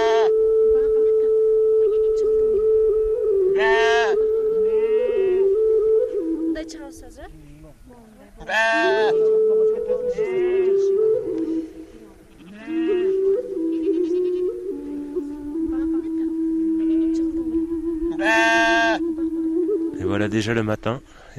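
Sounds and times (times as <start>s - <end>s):
sheep bleating: 0.0s - 0.3s, 8.4s - 9.1s, 12.3s - 13.2s, 18.2s - 19.0s
steady low sustained tone: 0.0s - 21.2s
speech: 20.4s - 21.3s.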